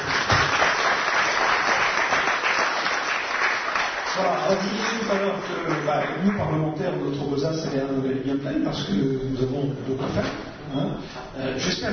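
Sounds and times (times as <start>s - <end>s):
crowd applauding steadily: 0.0s - 6.7s
speech: 4.2s - 11.9s.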